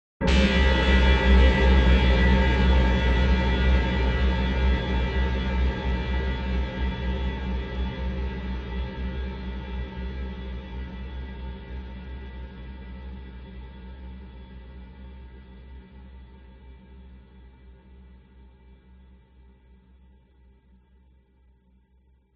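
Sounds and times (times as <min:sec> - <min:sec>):
dark horror fear hit: 0:00.2 - 0:08.1.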